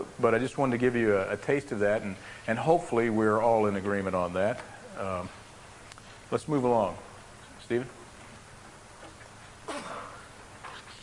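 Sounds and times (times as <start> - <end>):
quiet hiss: 0.0 - 11.0
speech: 0.2 - 5.4, 6.3 - 7.1, 7.7 - 8.0
person sneezing: 9.7 - 10.9.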